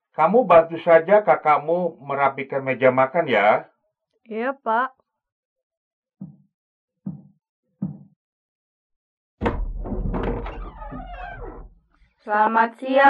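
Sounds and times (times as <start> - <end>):
speech: 0.2 - 5.0, 12.2 - 13.0
door opening with a thump: 9.4 - 11.8.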